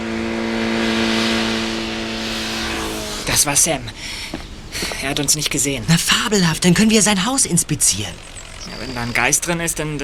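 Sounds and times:
motorcycle engine droning and revving as it drives away toward town: 0.0 - 3.6, 7.6 - 10.0
speech: 3.3 - 10.0.

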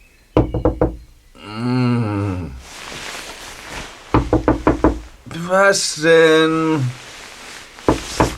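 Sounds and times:
knocking on a door: 0.4 - 1.2, 4.2 - 5.1, 7.9 - 8.3
speech: 5.5 - 7.0.

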